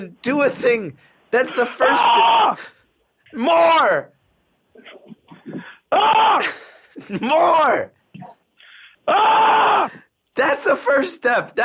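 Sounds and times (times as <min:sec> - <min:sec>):
speech: 0:00.0 - 0:04.2, 0:04.8 - 0:08.4, 0:09.1 - 0:11.6
person screaming loudly: 0:01.5 - 0:02.7, 0:05.9 - 0:06.6, 0:09.1 - 0:10.0.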